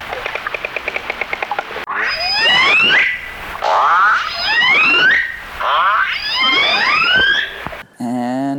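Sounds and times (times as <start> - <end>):
sharp killer whale echolocation clicks: 0.1 - 1.8
squealing rising whale calls: 1.9 - 7.8.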